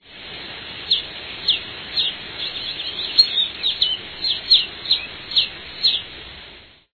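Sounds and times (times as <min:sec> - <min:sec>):
caboclinho-de-faixa bird: 0:00.9 - 0:06.1.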